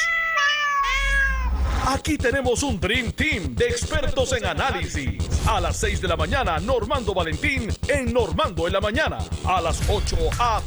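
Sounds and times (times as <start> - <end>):
several cats meowing loudly: 0.0 - 1.9
speech: 1.9 - 10.6.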